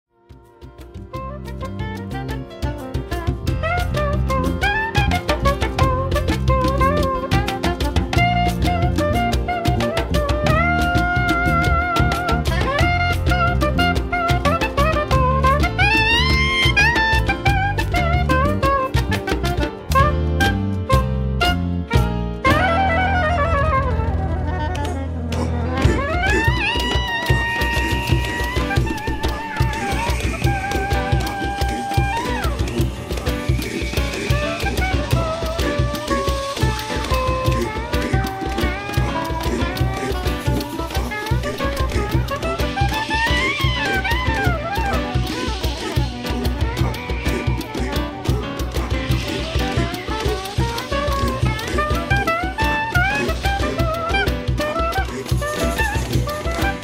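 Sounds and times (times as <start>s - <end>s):
soprano saxophone solos: 1.1s - 56.8s.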